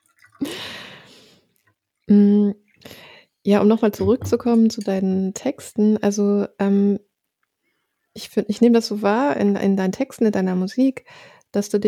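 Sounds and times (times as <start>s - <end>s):
tea being poured into a cup: 0.0s - 0.6s
speech: 2.1s - 2.6s, 3.4s - 7.1s, 8.2s - 11.8s.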